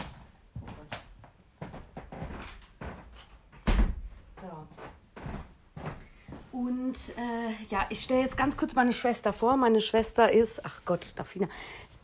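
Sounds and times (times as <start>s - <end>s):
door thudding shut: 3.6s - 4.1s
speech: 6.9s - 11.9s.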